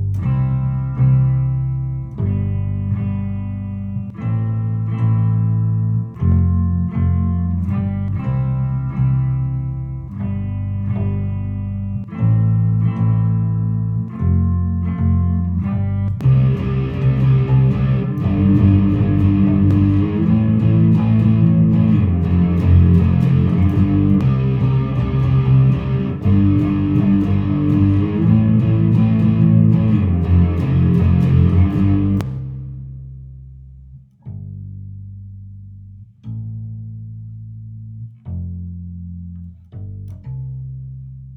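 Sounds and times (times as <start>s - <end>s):
music track without piano: 0.1s - 33.0s.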